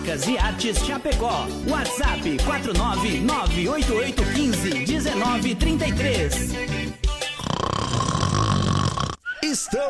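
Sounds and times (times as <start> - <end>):
speech: 0.1 - 6.8, 9.5 - 9.8
loud rattling snore: 7.3 - 9.2.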